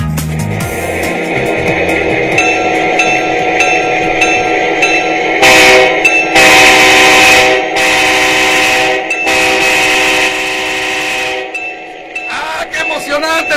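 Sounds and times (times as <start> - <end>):
scale model train locomotive running: 0.2 - 13.5
scale model train locomotive whistle: 2.4 - 11.6.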